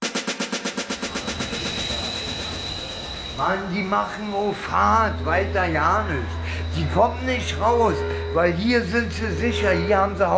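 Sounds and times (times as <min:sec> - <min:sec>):
train rumbling past at Anhalter Bahnhof in Berlin: 0:00.7 - 0:10.3
speech: 0:03.4 - 0:10.3.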